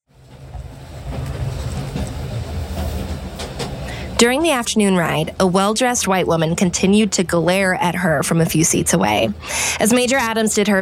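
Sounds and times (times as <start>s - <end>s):
train rolling along its rails: 0.1s - 10.7s
faint train rattles and clacks: 0.3s - 3.9s
speech: 4.2s - 10.7s.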